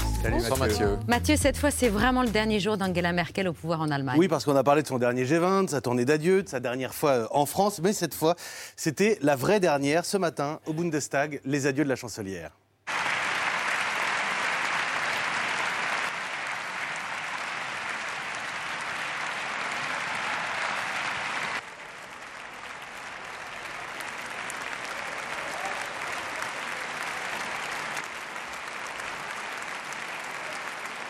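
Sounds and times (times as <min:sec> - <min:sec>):
speech: 0:00.2 - 0:12.6
sustained applause from a standing ovation in the German parliament: 0:12.9 - 0:31.0.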